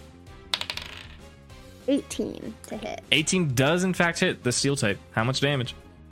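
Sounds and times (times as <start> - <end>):
die rolling and clattering across a hard table: 0.5 - 1.2
speech: 1.9 - 5.8.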